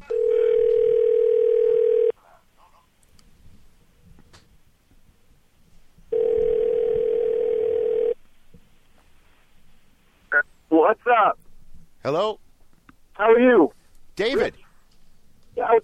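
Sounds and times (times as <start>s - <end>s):
ringback tone of an outgoing phone call: 0.0s - 2.1s, 6.1s - 8.2s
faint noise: 0.0s - 15.8s
speech: 12.1s - 12.4s, 13.2s - 14.6s.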